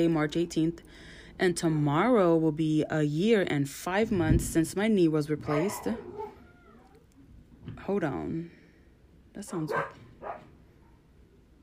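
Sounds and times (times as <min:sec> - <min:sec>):
speech: 0:00.0 - 0:06.3, 0:07.7 - 0:08.6, 0:09.4 - 0:10.4
low hum: 0:00.0 - 0:11.6
dog barks from outside: 0:05.5 - 0:06.4, 0:09.5 - 0:10.5.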